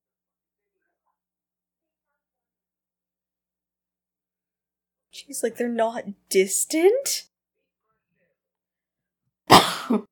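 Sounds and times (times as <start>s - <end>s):
speech: 5.2s - 7.3s, 9.9s - 10.1s
person coughing: 9.5s - 10.1s.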